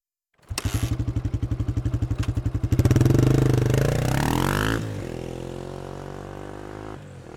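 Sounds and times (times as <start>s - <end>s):
motocross bike engine idling and revving: 0.4s - 7.3s.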